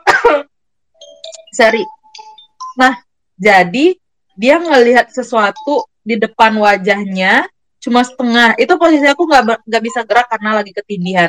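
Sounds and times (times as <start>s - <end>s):
harsh coughs after choking: 0.0s - 0.5s
speech: 1.6s - 2.0s, 2.8s - 11.2s.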